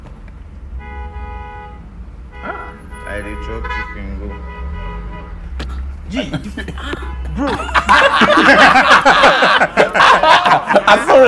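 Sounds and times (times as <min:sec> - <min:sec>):
road traffic rumble: 0:00.0 - 0:11.2
car horn blaring: 0:00.7 - 0:05.6, 0:06.7 - 0:08.0
speech: 0:03.2 - 0:04.6, 0:06.1 - 0:10.2, 0:10.8 - 0:11.2
laughter: 0:06.1 - 0:11.2.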